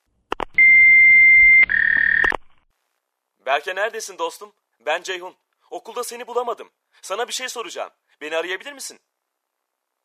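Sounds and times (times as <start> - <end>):
answering machine beep tones: 0.6 - 2.4
speech: 3.5 - 9.1.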